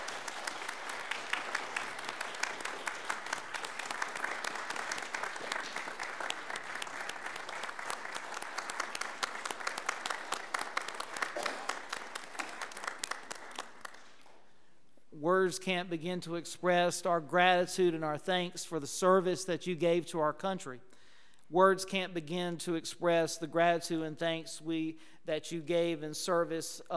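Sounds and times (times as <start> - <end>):
large audience applauding veterans: 0.0 - 14.3
speech: 15.4 - 20.9, 21.5 - 26.9.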